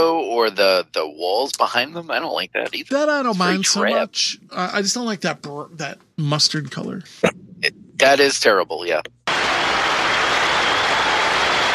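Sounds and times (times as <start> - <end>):
speech: 0.4 - 9.8
dense steady audience applause: 9.3 - 11.7.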